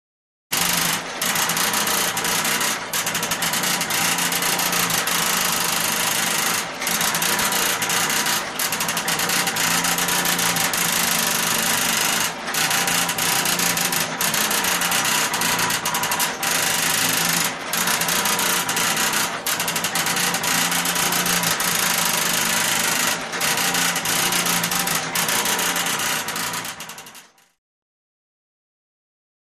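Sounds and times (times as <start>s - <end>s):
industrial printer running: 0.5s - 27.6s.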